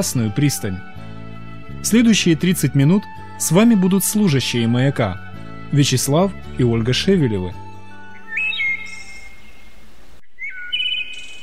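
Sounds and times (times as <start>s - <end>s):
speech: 0.0s - 1.0s, 1.8s - 7.6s
small bird whistling and chirping: 8.1s - 11.4s.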